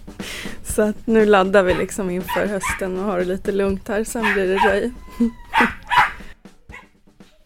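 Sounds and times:
speech: 0:00.8 - 0:05.8
dogs barking and yipping: 0:01.7 - 0:03.0, 0:04.1 - 0:07.4.

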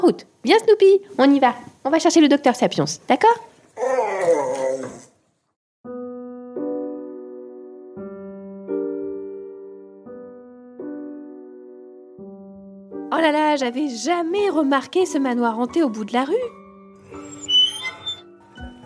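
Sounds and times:
speech: 0:00.0 - 0:03.5, 0:13.3 - 0:16.6
dog whimpering with long steady whines: 0:03.8 - 0:05.1, 0:17.2 - 0:18.3
dog giving a short loud yelp: 0:17.2 - 0:18.3.

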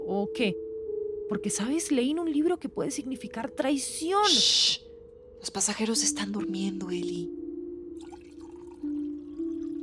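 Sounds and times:
speech: 0:00.1 - 0:00.6, 0:01.3 - 0:07.4
water poured into small cups aboard an airplane: 0:08.0 - 0:09.8.

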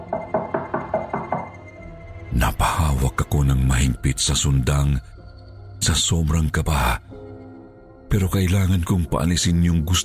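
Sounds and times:
knocking on the wooden door of a house: 0:00.0 - 0:01.7
speech: 0:02.4 - 0:05.2, 0:05.8 - 0:07.2, 0:08.1 - 0:10.0.

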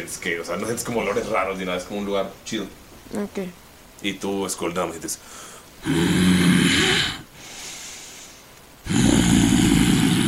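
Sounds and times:
speech: 0:00.0 - 0:07.2
voice imitating a dragon's heavy rasping breathing: 0:05.8 - 0:08.1, 0:08.8 - 0:10.2.

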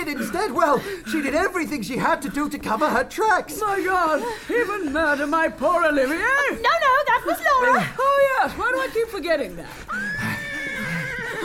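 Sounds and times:
speech: 0:00.1 - 0:10.3
horse neighing with a shrill quavering whinny: 0:10.0 - 0:11.4.

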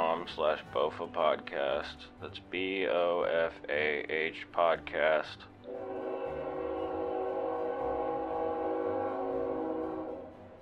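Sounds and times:
speech: 0:00.2 - 0:06.0
train horn blaring: 0:05.6 - 0:10.5.

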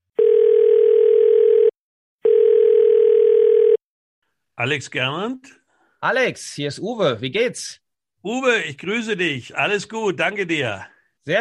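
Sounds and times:
telephone dial tone as the receiver is picked up: 0:00.2 - 0:03.8
speech: 0:04.6 - 0:11.4.

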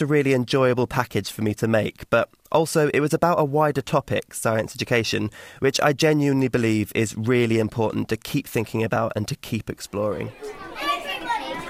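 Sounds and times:
speech: 0:00.0 - 0:10.9
class of ten-year-old primary school children chattering in Devon, England, before lunchtime: 0:09.9 - 0:11.6.

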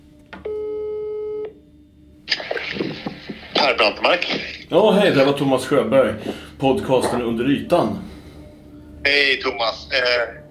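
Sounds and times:
telephone ringing tone over a line: 0:00.5 - 0:01.5
speech: 0:03.6 - 0:08.1, 0:09.0 - 0:10.4.

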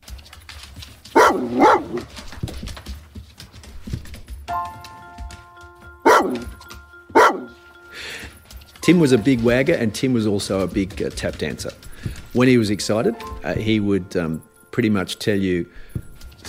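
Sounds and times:
Labrador cross dog barking: 0:01.1 - 0:02.1, 0:06.0 - 0:06.6, 0:07.2 - 0:07.6
speech: 0:08.9 - 0:15.9.

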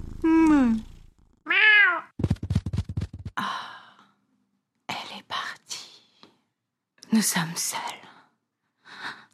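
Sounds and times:
speech: 0:00.2 - 0:00.9, 0:07.2 - 0:08.0
cat meowing: 0:01.5 - 0:02.1.

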